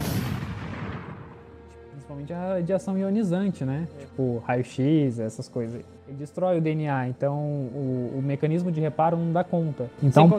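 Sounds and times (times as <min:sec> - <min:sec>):
single loud gunshot sound effect with rumbling echo: 0:00.0 - 0:01.6
speech: 0:02.1 - 0:10.3.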